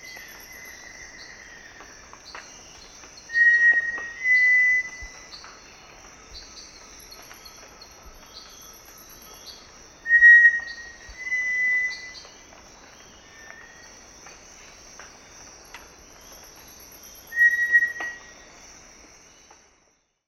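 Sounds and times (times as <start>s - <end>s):
high continuous insect buzz: 0.0s - 19.9s
faint chirps: 0.0s - 20.2s
cinereous tinamou whistles in the eastern lowlands of South America: 3.3s - 5.0s, 10.1s - 12.2s, 17.3s - 18.2s.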